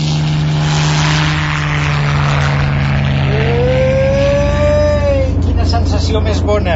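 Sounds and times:
engine revving and accelerating away: 0.0 - 6.7
speech: 6.1 - 6.7.

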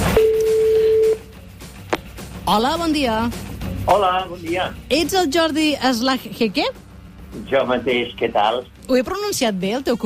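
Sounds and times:
electronic ringback tone of an outgoing call to a red mobile phone: 0.2 - 1.3
speech: 2.5 - 10.0.

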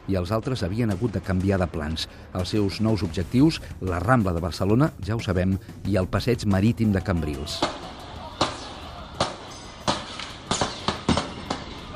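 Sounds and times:
speech: 0.1 - 8.0
gunshots fired by police at night in Cambrils: 7.6 - 11.9.

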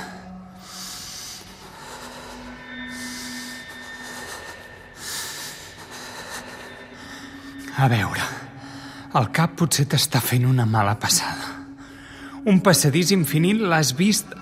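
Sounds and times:
heavy breathing: 0.0 - 9.1
speech: 7.8 - 8.4, 9.1 - 11.5, 12.5 - 14.3.

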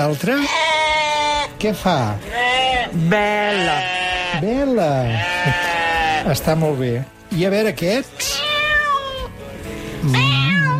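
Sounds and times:
speech: 0.0 - 0.7, 1.6 - 5.6, 6.2 - 8.3, 10.0 - 10.4
cats meowing: 0.4 - 1.5, 2.4 - 4.4, 5.1 - 6.2, 8.2 - 9.4, 10.0 - 10.7.

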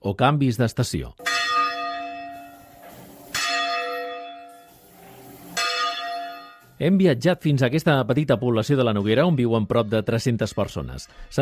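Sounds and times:
speech: 0.0 - 1.2, 6.8 - 11.3
manual peals of church bells in Ivars de Noguera: 1.2 - 6.8.

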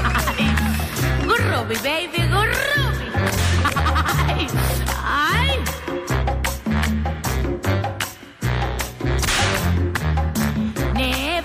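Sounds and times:
laughter: 0.0 - 1.0, 3.5 - 4.8
steady low musical backing: 0.0 - 11.4
speech: 1.7 - 2.8
whip cracks: 9.2 - 9.8.

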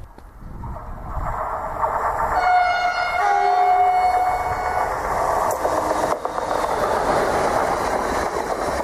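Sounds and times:
non-stopping train roaring through a station: 0.0 - 8.8
train horn tone: 2.4 - 4.8.

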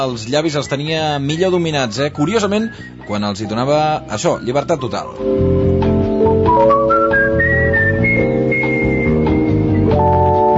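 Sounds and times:
speech: 0.0 - 5.6
person whistling a jazz melody: 0.0 - 10.5
steady band accompaniment: 5.2 - 10.5.

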